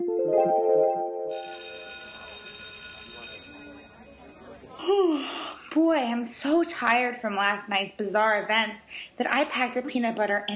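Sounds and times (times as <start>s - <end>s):
speech: 0.4s - 1.5s, 5.8s - 10.5s
telephone ringing tone during a call: 1.3s - 4.3s.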